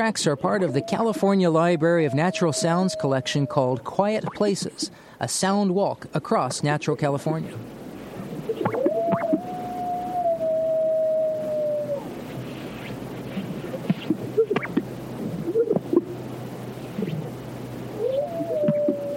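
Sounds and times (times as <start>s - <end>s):
coyote howling across arid sagebrush in California's Great Basin: 0.0s - 4.5s, 8.4s - 14.8s, 16.9s - 19.1s
speech: 0.0s - 7.8s
faint hiss: 0.0s - 19.1s
greater sage grouse popping and bubbling calls: 8.4s - 9.4s, 12.2s - 16.2s, 16.8s - 17.3s.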